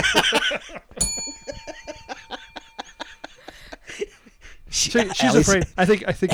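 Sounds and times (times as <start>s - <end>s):
people laughing and snickering: 0.0s - 6.3s
speech: 0.1s - 1.0s, 4.8s - 6.3s
bright bell struck: 1.0s - 4.0s.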